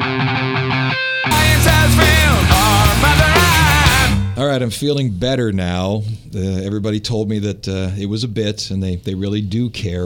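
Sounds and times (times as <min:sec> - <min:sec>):
loud alternative metal song with guitars, drums and vocals: 0:00.0 - 0:04.5
speech: 0:04.6 - 0:10.0.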